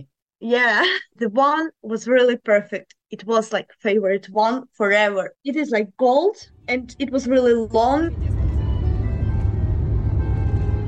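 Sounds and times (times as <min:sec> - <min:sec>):
speech: 0:00.0 - 0:08.4
car engine and road rumble on a long road trip: 0:06.6 - 0:10.8.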